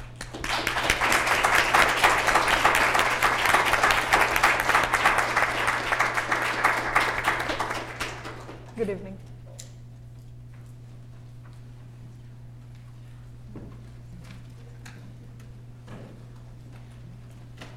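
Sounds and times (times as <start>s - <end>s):
audience applause: 0.0s - 8.7s
low constant hum: 0.0s - 17.7s.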